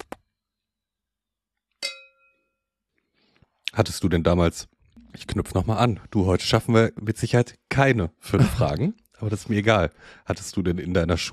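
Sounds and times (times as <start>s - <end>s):
two glasses clinking in a toast: 1.8s - 2.5s
speech: 3.8s - 11.3s.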